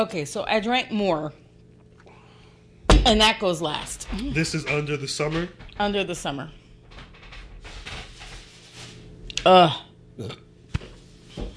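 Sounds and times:
speech: 0:00.0 - 0:01.4, 0:03.0 - 0:06.6, 0:09.4 - 0:10.4
short abrupt burp: 0:09.4 - 0:10.5.

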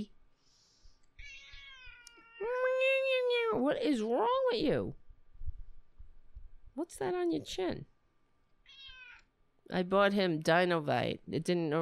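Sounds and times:
cat meowing: 0:01.2 - 0:02.4, 0:08.6 - 0:09.3
speech: 0:03.5 - 0:05.0, 0:06.8 - 0:07.9, 0:09.7 - 0:11.7
soft low thumps: 0:05.4 - 0:06.8.

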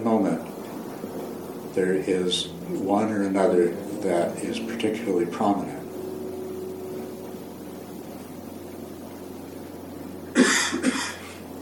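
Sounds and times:
steady low mechanical hum: 0:00.0 - 0:11.6
speech: 0:00.1 - 0:00.6, 0:01.8 - 0:05.8
person coughing: 0:10.4 - 0:11.4.

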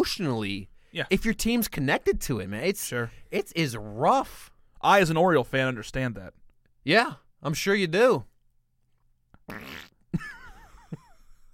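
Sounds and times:
speech: 0:00.0 - 0:08.3, 0:09.5 - 0:10.4
vocal imitation of a fart: 0:09.4 - 0:10.1.

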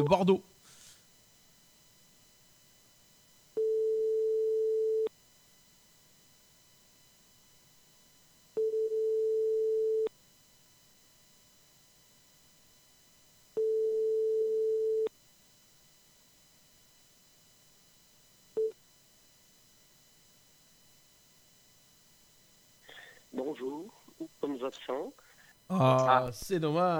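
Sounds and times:
speech: 0:00.0 - 0:00.5, 0:23.6 - 0:23.9, 0:24.7 - 0:26.9
telephone ringback tone on an outgoing call: 0:03.6 - 0:05.1, 0:08.6 - 0:10.1, 0:13.6 - 0:15.1.

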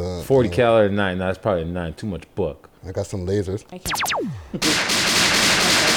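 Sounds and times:
speech: 0:00.3 - 0:05.1
cartoonish Western-style gunshot blast with hissing roar: 0:03.9 - 0:05.9
cartoonish falling ricochet whistle: 0:03.9 - 0:05.9.

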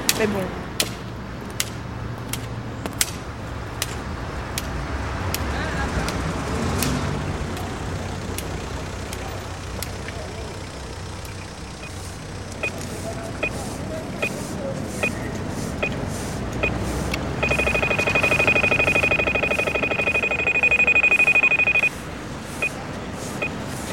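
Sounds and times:
street traffic rumbling: 0:00.0 - 0:23.9
speech: 0:00.2 - 0:00.6
audible pedestrian crossing signal in Brussels ticking and beeping: 0:08.0 - 0:23.9.

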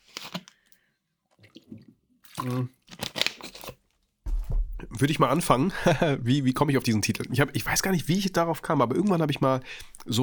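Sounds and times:
plastic bottle being handled: 0:00.0 - 0:04.1
person sipping and swallowing water: 0:01.4 - 0:02.8
speech: 0:02.4 - 0:02.8, 0:05.0 - 0:10.2
laughter: 0:05.5 - 0:06.3.

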